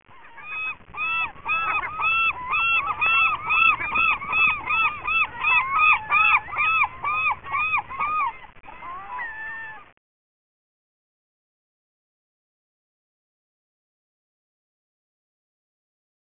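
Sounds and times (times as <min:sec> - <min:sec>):
seagulls on a beach: 0:00.1 - 0:10.0.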